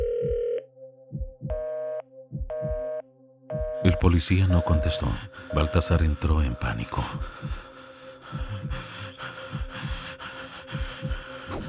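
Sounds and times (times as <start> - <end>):
heartbeat thudding in low double beats: 0.0 - 3.9, 7.1 - 7.7, 8.3 - 8.9, 9.5 - 10.1, 10.7 - 11.6
speech: 3.9 - 7.7.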